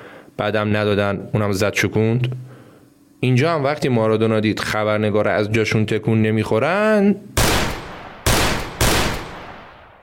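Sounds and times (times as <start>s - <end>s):
speech: 0.4s - 2.5s, 3.2s - 7.3s
loud gunshots with decay: 7.4s - 10.0s.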